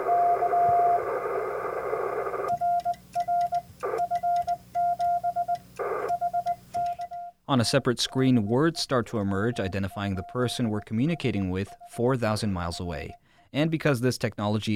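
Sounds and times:
radio static: 0.0 - 7.1
Morse code radio transmission tone: 2.5 - 13.2
speech: 7.5 - 14.7.

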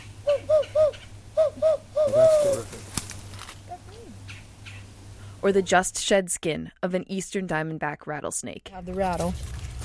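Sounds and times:
two owls hooting in a hardwood hammock: 0.0 - 2.8
low steady hum: 0.0 - 9.8
speech: 5.4 - 9.6.

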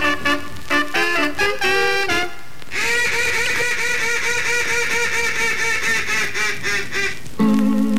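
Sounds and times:
ducks quacking: 0.0 - 7.5.

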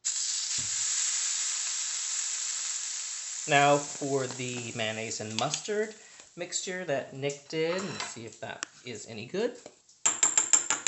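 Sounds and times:
burger patty frying in a pan of leftover bacon grease: 0.0 - 6.1
speech: 3.4 - 9.8.

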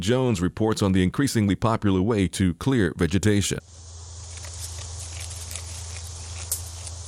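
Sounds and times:
speech: 0.0 - 3.9
steady low hum and hiss: 3.1 - 7.0
goats chewing in a cemetery: 4.0 - 7.0.

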